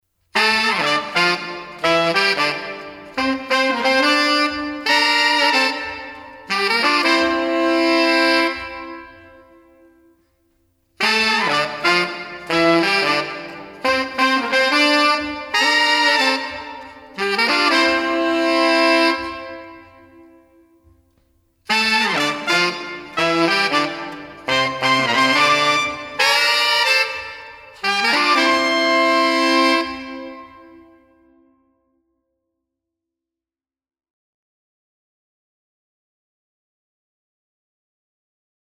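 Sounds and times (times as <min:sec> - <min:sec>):
horn section: 0:00.4 - 0:10.1, 0:11.0 - 0:20.6, 0:21.7 - 0:31.2.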